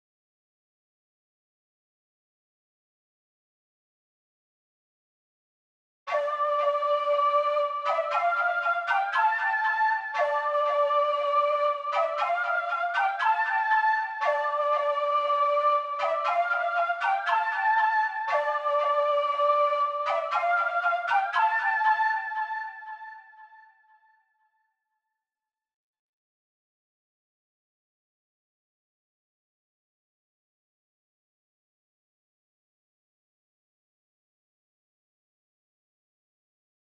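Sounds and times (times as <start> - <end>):
flute melody loop in D minor at 118 BPM: 6.1 - 23.8.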